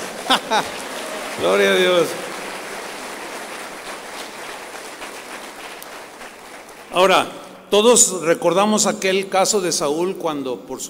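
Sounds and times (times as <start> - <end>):
laughter: 0.0 - 3.2
large crowd clapping: 0.0 - 7.6
speech: 0.3 - 0.8, 1.4 - 2.3, 6.9 - 10.8.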